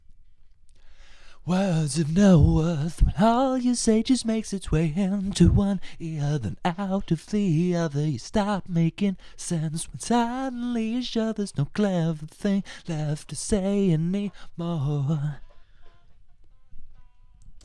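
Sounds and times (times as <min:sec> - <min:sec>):
voice: 0:01.5 - 0:15.5.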